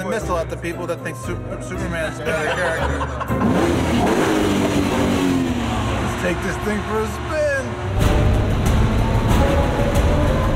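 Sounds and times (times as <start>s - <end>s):
speech: 0.0s - 4.8s, 6.2s - 7.4s
laughter: 2.0s - 3.8s
car engine revving: 3.3s - 10.5s.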